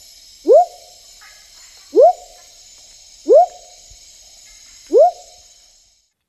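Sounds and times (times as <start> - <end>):
steady high hum: 0.0 - 6.0
smoky jungle frog Leptodactylus pentadactylus giving rising whoop notes in the Ecuadorian Amazon: 0.4 - 0.9, 1.9 - 2.4, 3.2 - 3.7, 4.9 - 5.4.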